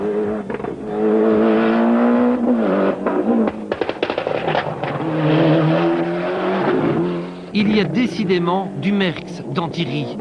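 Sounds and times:
rally car engine revving hard at speed on a rally stage: 0.0s - 10.1s
speech: 7.7s - 10.1s.

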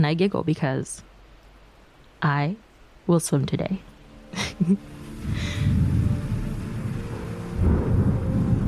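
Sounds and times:
speech: 0.0s - 1.1s, 2.2s - 5.8s
heavy rain: 4.2s - 8.6s
laughter: 4.4s - 4.8s
rolling thunder: 5.2s - 8.6s.

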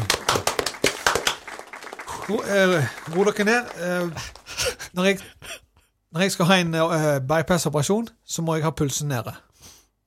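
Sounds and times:
small group clapping: 0.0s - 5.2s
speech: 2.3s - 4.4s, 5.0s - 5.4s, 6.1s - 9.5s.

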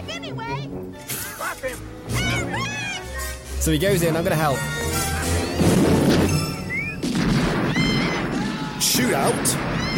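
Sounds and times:
speech: 0.2s - 2.7s, 3.6s - 5.0s, 9.0s - 9.9s
crashing debris from an explosion in a movie scene: 5.5s - 9.9s
huge roaring explosion in a movie scene: 5.6s - 9.9s
brief whistling tones: 6.3s - 7.1s.

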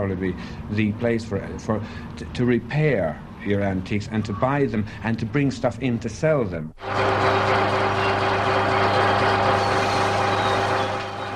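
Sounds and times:
speech: 0.0s - 7.2s
gas torch roaring while brazing an antique lamp: 6.8s - 11.3s.

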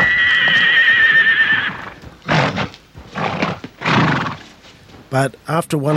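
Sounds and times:
horse giving a loud high wavering neigh: 0.0s - 4.6s
speech: 5.1s - 5.9s.

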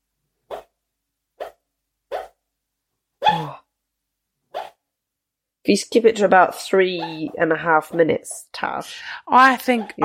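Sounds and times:
sleeping female dog woofing while dreaming: 0.5s - 0.7s, 1.4s - 2.4s, 4.6s - 4.8s
speech: 5.7s - 10.0s.

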